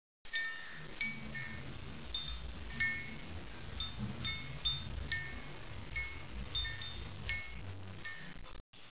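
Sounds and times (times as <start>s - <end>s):
wind chime: 0.3s - 3.2s, 3.8s - 8.9s.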